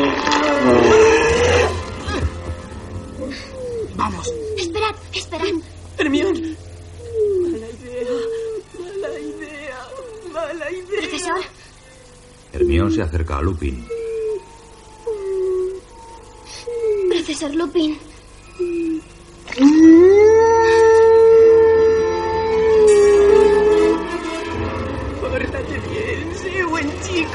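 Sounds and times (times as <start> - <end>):
strained snarling werewolf growls: 0.0 - 2.3
loud harsh werewolf transformation roar: 0.0 - 2.5, 20.7 - 27.3
whining vocal cries of a man transforming into a werewolf: 0.0 - 25.2
speech: 13.1 - 13.9.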